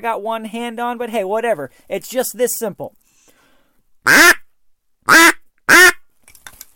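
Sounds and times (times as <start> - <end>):
speech: 0.0 - 3.0, 4.0 - 4.3
nasal quacks blown on a duck call: 4.0 - 4.4, 5.1 - 6.0.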